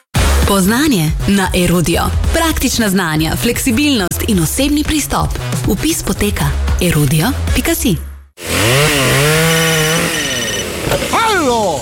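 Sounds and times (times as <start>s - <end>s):
speech: 0.5s - 8.1s, 11.4s - 11.8s
chainsaw cutting wood: 8.4s - 11.6s.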